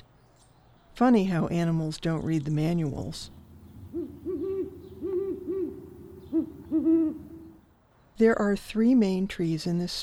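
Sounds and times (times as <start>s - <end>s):
speech: 1.0s - 3.4s, 8.2s - 10.0s
owl hooting in deep resonant notes: 3.6s - 7.6s.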